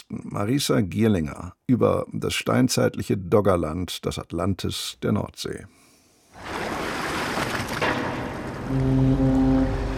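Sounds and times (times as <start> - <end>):
speech: 0.1 - 5.8, 8.7 - 9.8
broad harbour water noise: 6.4 - 9.9
waves washing against the breakwater at a harbour: 6.4 - 9.9
ship's deep sustained horn blast: 8.2 - 9.9.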